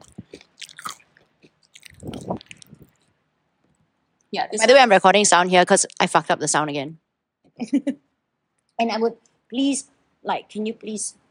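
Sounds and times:
person chewing barbecue while tasting it: 0.0s - 3.1s
speech: 4.3s - 7.0s, 7.6s - 8.1s, 8.8s - 11.2s.

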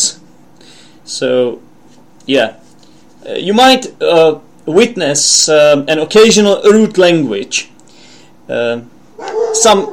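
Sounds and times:
speech: 1.2s - 1.7s, 2.3s - 2.6s, 3.2s - 7.7s, 8.5s - 9.9s
dog barking with rising yowling barks and whines: 9.2s - 9.9s.

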